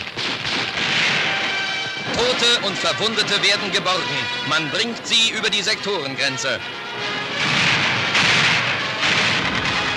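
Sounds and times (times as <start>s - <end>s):
gunshots of a shooting cracking through the streets: 0.0s - 4.4s, 7.0s - 9.9s
speech: 2.2s - 7.1s.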